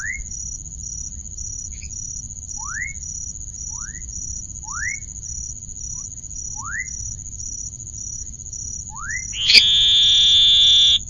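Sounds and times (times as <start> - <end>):
Elachistocleis ovalis oval frog buzzing call: 9.4 - 11.0
high whine: 9.4 - 11.0
short rising chirps: 9.4 - 11.0.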